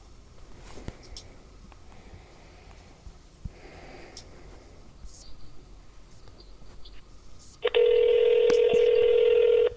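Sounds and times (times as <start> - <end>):
loud steady electronic telephone ringing tone: 7.6 - 9.7.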